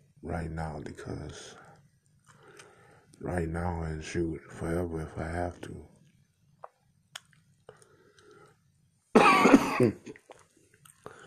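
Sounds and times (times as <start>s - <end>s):
speech: 0.2s - 1.6s, 3.2s - 5.9s, 9.5s - 10.2s
harsh cough: 9.2s - 10.1s
throat-clearing rasp: 9.2s - 10.2s.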